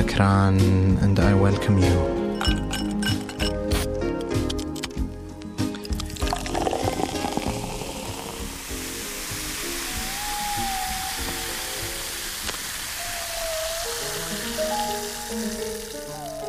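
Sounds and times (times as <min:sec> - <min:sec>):
speech: 0:00.2 - 0:02.2
glass clinks: 0:02.4 - 0:03.9
fizzy drink poured into a glass: 0:05.8 - 0:16.4.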